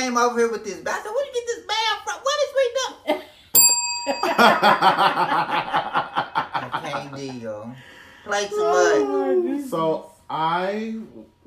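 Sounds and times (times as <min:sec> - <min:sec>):
speech: 0:00.0 - 0:03.2, 0:04.0 - 0:06.0, 0:07.2 - 0:11.3
tap bell ding: 0:03.6 - 0:05.0
laughter: 0:04.2 - 0:07.8
people chattering excitedly: 0:08.3 - 0:09.7.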